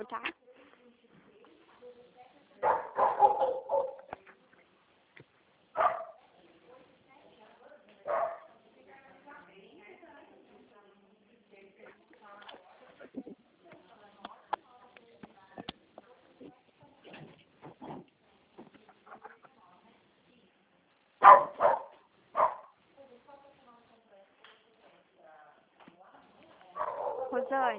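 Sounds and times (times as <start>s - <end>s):
speech: 0.0s - 0.4s, 27.5s - 27.7s
female dog barking: 2.6s - 4.1s, 5.8s - 6.2s, 8.0s - 8.5s, 21.2s - 22.8s, 26.8s - 27.5s.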